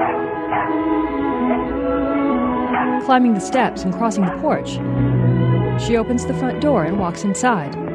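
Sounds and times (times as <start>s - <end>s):
dog barking by a fence gate: 0.0s - 1.7s, 2.7s - 3.1s, 4.0s - 4.7s
speech: 3.0s - 7.8s.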